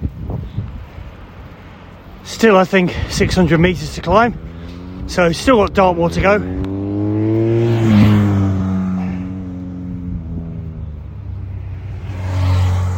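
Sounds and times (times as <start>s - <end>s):
speech: 2.3s - 4.5s, 5.1s - 6.6s
group of motorbikes revving past on a hill climb: 2.8s - 12.9s.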